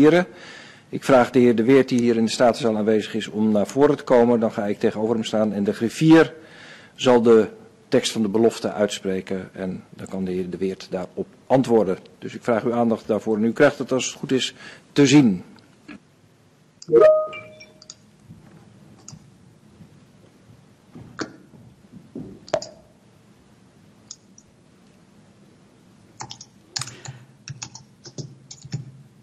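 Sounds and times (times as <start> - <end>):
speech: 0.0 - 16.0, 16.9 - 17.4
typing on a keyboard at home during an online committee meeting: 26.2 - 28.9.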